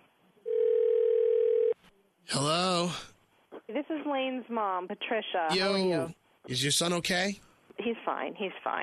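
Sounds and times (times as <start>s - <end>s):
telephone dial tone while placing a three-way call: 0.5s - 1.8s
speech: 3.9s - 8.8s.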